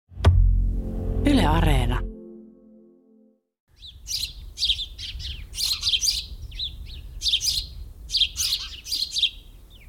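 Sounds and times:
low hum: 0.2 - 3.3
speech: 1.5 - 2.1
house sparrow chirping: 3.7 - 9.8.

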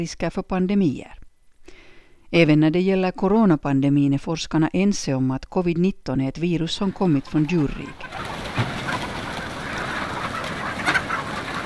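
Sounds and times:
speech: 0.0 - 1.2, 2.3 - 8.7
many hens clucking in a large hall: 6.5 - 11.6.

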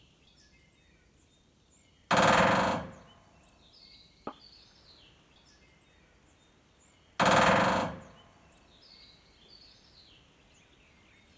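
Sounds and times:
woodpecker drumming: 7.2 - 8.2.

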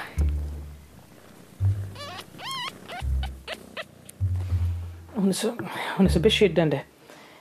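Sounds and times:
soft low thumps: 0.0 - 3.5, 4.1 - 5.2, 6.0 - 6.8
litter of three newborn kittens squeaking: 1.6 - 4.3
speech: 5.2 - 6.9.

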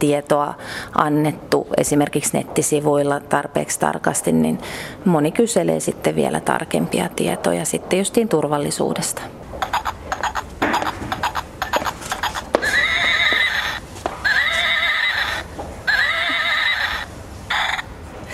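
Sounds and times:
speech: 0.0 - 9.9
toy rocking horse clip-clop galloping: 9.6 - 15.4
toy rocking horse whinnying: 9.6 - 17.9.

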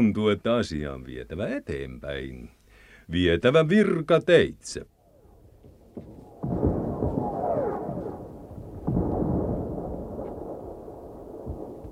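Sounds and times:
speech: 0.0 - 4.9
deep wartime gunshots with rumble: 5.8 - 11.9.

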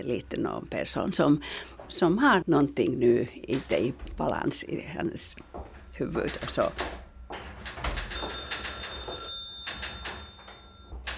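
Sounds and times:
speech: 0.0 - 7.0
telephone bell ringing with electronic tone: 6.4 - 11.1.

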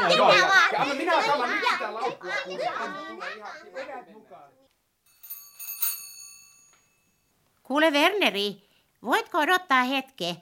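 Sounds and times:
speech: 0.7 - 4.6, 7.7 - 10.4
doorbell ringing with bright metallic tones: 5.1 - 7.3.

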